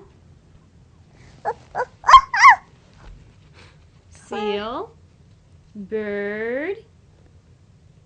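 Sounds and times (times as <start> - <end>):
small child imitating a dog barking: 1.5 - 2.6
speech: 5.8 - 6.9.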